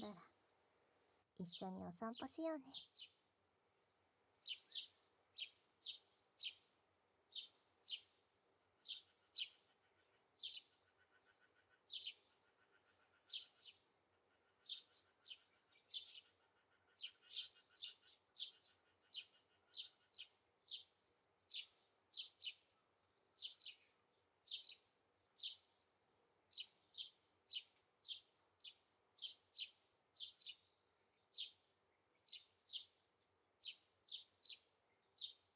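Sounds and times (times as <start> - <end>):
speech: 0.0 - 0.3, 1.4 - 3.2, 4.4 - 4.8
birds chirping outdoors: 4.4 - 6.6, 8.8 - 13.8, 14.5 - 25.8, 26.5 - 33.0, 33.6 - 35.5.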